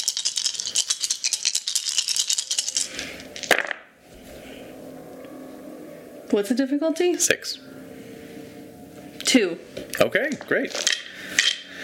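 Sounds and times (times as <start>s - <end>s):
six dice rattling and clattering as they are rolled: 0.0s - 3.8s, 10.7s - 11.6s
speech: 6.4s - 7.8s, 9.3s - 11.0s.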